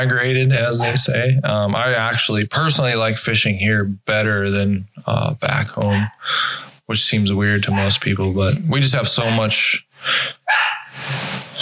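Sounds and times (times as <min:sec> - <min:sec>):
speech: 0:00.0 - 0:11.3
dog barking: 0:00.8 - 0:01.1, 0:05.9 - 0:06.2, 0:07.7 - 0:08.0, 0:09.2 - 0:09.5, 0:10.5 - 0:11.0.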